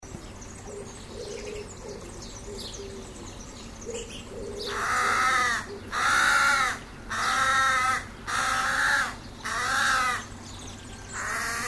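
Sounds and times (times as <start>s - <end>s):
Corvus corone carrion crow cawing: 4.5s - 10.3s, 11.2s - 11.6s.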